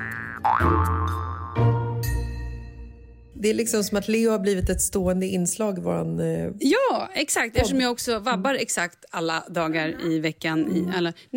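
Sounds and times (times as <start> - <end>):
cartoon boing bounce sound: 0.0 - 1.8
speech: 0.5 - 1.8, 3.4 - 11.3.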